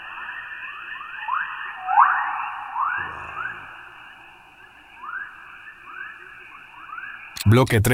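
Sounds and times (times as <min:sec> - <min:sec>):
sonified Earth's magnetic field rising chirps and whistles: 0:00.0 - 0:07.4
sonified Earth's magnetic field hissing electronic drone: 0:01.8 - 0:05.6
speech: 0:07.4 - 0:07.9.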